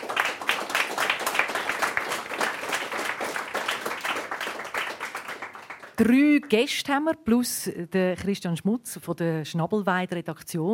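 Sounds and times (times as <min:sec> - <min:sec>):
live audience applause: 0:00.0 - 0:06.1
speech: 0:06.0 - 0:10.7.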